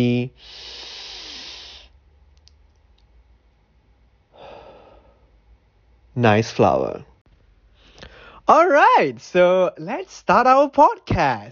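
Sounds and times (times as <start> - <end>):
speech: 0.0 - 0.8, 6.2 - 7.1, 8.5 - 11.5
deep breaths: 0.4 - 2.0, 4.3 - 5.4, 7.6 - 8.5.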